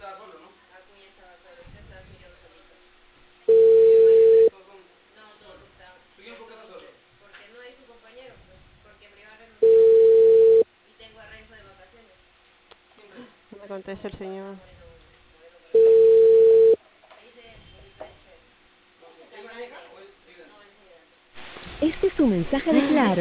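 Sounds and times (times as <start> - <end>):
loud steady telephone line tones: 3.5 - 4.5, 9.6 - 10.6, 15.8 - 16.8
speech: 13.8 - 14.8, 22.3 - 23.1.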